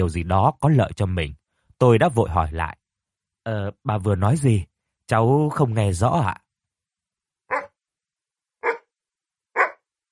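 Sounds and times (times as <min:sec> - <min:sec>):
speech: 0:00.0 - 0:02.8, 0:03.4 - 0:06.4
white-furred blue-eyed dog barking loudly in a room: 0:07.5 - 0:07.8, 0:08.6 - 0:08.9, 0:09.6 - 0:09.8.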